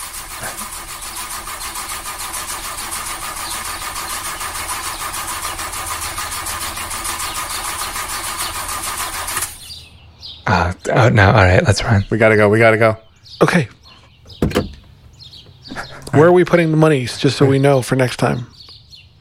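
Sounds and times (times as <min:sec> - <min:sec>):
speech: 0:10.5 - 0:13.8, 0:16.2 - 0:18.6
car engine cranking but failing to start: 0:14.1 - 0:15.9.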